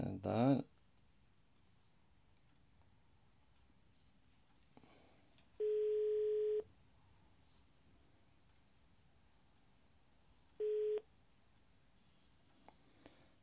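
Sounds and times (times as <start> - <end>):
speech: 0.0 - 0.7
faint hiss: 0.0 - 13.4
telephone tone beeps while a phone call is being placed: 5.6 - 6.7, 10.6 - 11.1.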